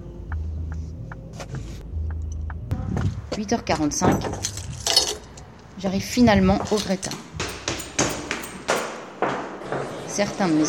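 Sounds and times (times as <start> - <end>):
car engine rumble heard from inside: 0.0 - 6.6
road drone heard from inside a car: 0.0 - 8.0
speech: 3.4 - 4.7, 5.8 - 7.3, 10.2 - 10.6.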